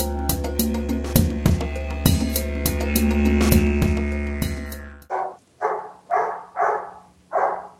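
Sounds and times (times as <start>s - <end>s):
music: 0.0s - 5.1s
dog barking: 5.1s - 7.7s.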